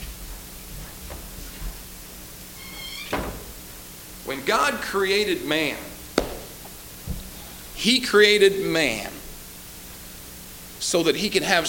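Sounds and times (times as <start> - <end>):
hiss: 1.3 - 11.6
door creaking: 2.6 - 3.5
speech: 4.3 - 5.9, 7.8 - 9.2, 10.9 - 11.6.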